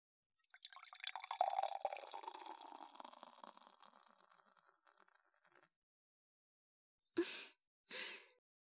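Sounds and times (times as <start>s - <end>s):
alcohol pouring into a glass: 0.4s - 5.5s
breathy exhalations: 7.2s - 8.3s.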